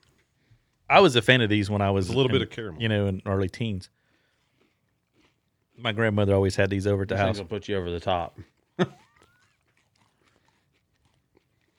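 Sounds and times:
chewing clicks and crackles of crispy rice candy bar: 0:00.0 - 0:00.9, 0:03.2 - 0:06.7, 0:07.6 - 0:11.7
speech: 0:00.9 - 0:04.0, 0:05.8 - 0:09.0
crunch of biting into a crispy rice candy bar: 0:03.9 - 0:06.2, 0:08.2 - 0:11.7.

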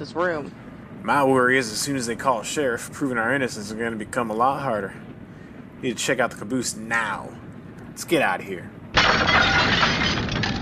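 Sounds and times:
speech: 0:00.0 - 0:05.1, 0:05.8 - 0:07.4, 0:08.0 - 0:09.8
glass breaking: 0:09.0 - 0:10.6.

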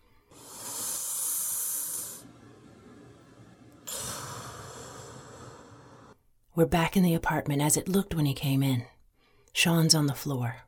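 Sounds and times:
deep slow human breathing: 0:00.0 - 0:06.2
speech: 0:06.6 - 0:08.9, 0:09.6 - 0:10.6.

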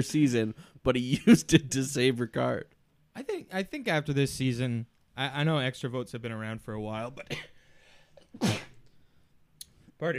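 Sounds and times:
speech: 0:00.0 - 0:07.5, 0:08.3 - 0:08.6, 0:10.0 - 0:10.1
person sneezing: 0:08.3 - 0:08.8.

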